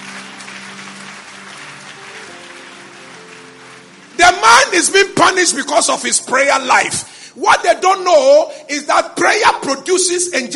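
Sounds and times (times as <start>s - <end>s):
crowd clapping: 0.0s - 5.7s
speech: 4.2s - 10.5s.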